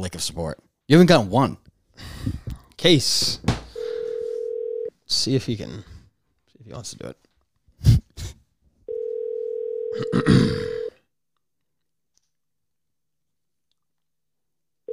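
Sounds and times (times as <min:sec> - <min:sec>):
speech: 0:00.0 - 0:03.5, 0:05.1 - 0:05.9, 0:06.7 - 0:07.2, 0:10.0 - 0:10.8
outgoing phone call ringback tone: 0:03.7 - 0:04.9, 0:08.9 - 0:10.9.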